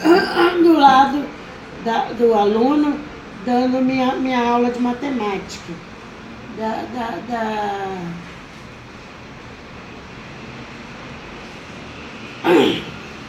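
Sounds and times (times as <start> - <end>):
throat clearing: 0.0 - 1.0, 12.5 - 13.0
speech: 1.8 - 5.9, 6.6 - 8.3, 12.5 - 12.9.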